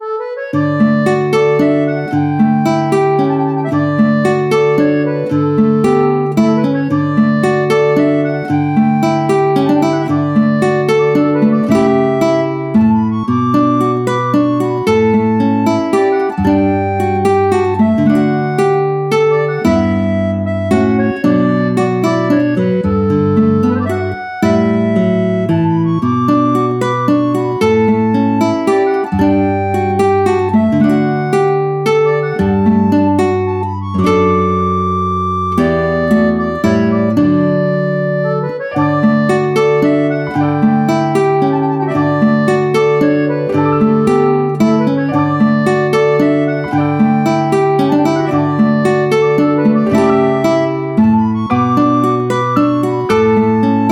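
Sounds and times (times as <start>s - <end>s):
relaxing song: 0.0s - 53.9s.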